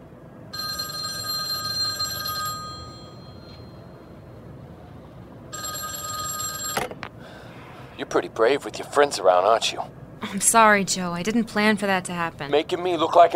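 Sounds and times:
low hum: 0:00.0 - 0:13.3
home telephone bell ringing: 0:00.5 - 0:04.0, 0:05.5 - 0:07.0
speech: 0:08.1 - 0:13.3.

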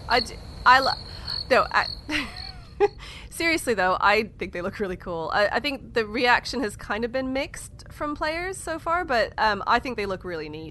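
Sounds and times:
short croaking frog-like calls: 0:00.0 - 0:02.7
high cricket trill: 0:00.0 - 0:03.0
speech: 0:00.1 - 0:10.7.

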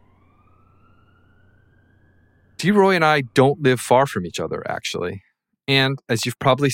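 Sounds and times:
distant emergency siren wailing: 0:00.0 - 0:04.8
speech: 0:02.6 - 0:06.7.

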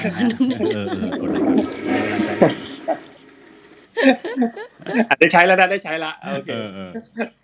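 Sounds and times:
laughter: 0:00.0 - 0:03.0, 0:03.9 - 0:07.3
speech: 0:00.0 - 0:03.0, 0:04.0 - 0:07.4
toilet flushing: 0:00.0 - 0:05.0.

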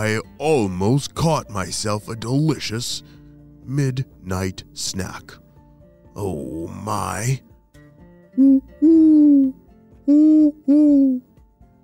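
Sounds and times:
speech: 0:00.0 - 0:05.4, 0:06.2 - 0:07.5, 0:08.4 - 0:11.3
owl hooting: 0:08.3 - 0:11.2.

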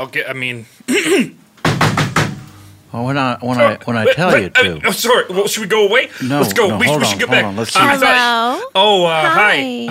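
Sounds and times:
speech: 0:00.0 - 0:01.4, 0:02.9 - 0:09.9
firm knocking on a door: 0:01.6 - 0:02.4.

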